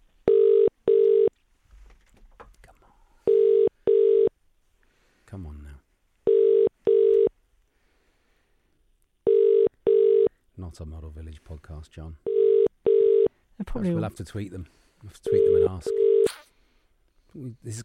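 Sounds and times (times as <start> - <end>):
telephone ringing tone in paired bursts: 0.2 - 1.3, 3.3 - 4.3, 6.2 - 7.3, 9.2 - 10.3, 12.2 - 13.3, 15.3 - 16.3
speech: 10.8 - 12.3, 13.7 - 16.4, 17.4 - 17.8.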